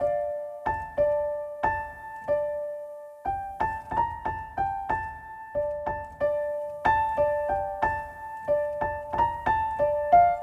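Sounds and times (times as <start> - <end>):
ambient piano riff in D minor at 92 BPM: 0.0 - 10.4.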